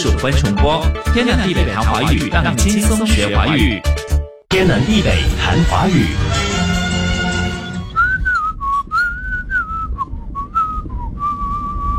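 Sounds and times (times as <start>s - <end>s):
speech: 0.0s - 6.5s
bright musical tones: 4.5s - 8.0s
person whistling a lilting melody: 7.9s - 11.9s.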